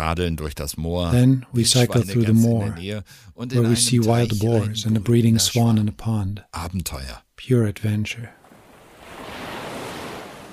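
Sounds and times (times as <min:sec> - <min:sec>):
speech: 0:00.0 - 0:08.4
sea waves washing onto the shore: 0:08.4 - 0:10.5.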